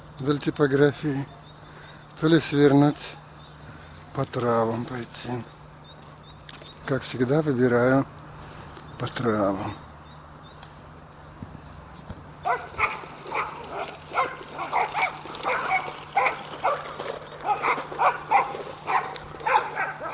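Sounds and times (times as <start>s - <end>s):
steady low hum: 0.0s - 20.1s
speech: 0.2s - 1.4s, 2.2s - 3.2s, 4.2s - 5.6s, 6.8s - 8.2s, 9.0s - 9.8s
several dogs barking: 12.4s - 20.1s.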